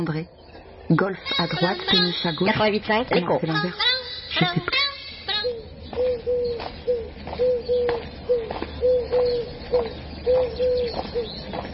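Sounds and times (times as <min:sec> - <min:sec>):
speech: 0:00.0 - 0:04.9
faint outdoor hiss: 0:00.0 - 0:11.7
turtle doves cooing: 0:05.3 - 0:11.7.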